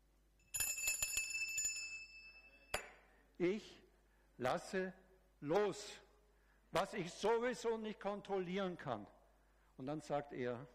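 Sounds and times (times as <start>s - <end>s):
bicycle bell ringing: 0.4s - 3.1s
speech: 3.4s - 3.8s, 4.4s - 6.0s, 6.7s - 9.2s, 9.8s - 10.7s.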